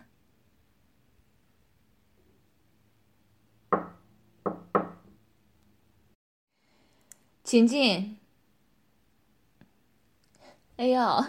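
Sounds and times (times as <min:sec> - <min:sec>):
knocking on a door: 0:03.7 - 0:05.2
speech: 0:07.5 - 0:08.2, 0:10.8 - 0:11.2.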